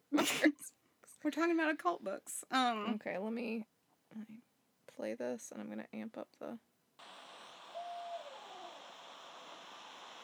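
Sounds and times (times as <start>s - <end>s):
constant hiss: 0.0s - 5.7s, 6.9s - 10.2s
speech: 0.2s - 6.7s
owl hooting: 7.0s - 10.2s.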